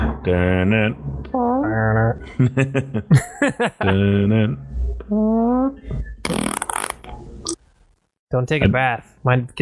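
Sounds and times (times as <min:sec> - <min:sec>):
speech: 0:00.2 - 0:06.5, 0:08.3 - 0:09.6
laughter: 0:02.2 - 0:04.6
fart: 0:06.2 - 0:07.0.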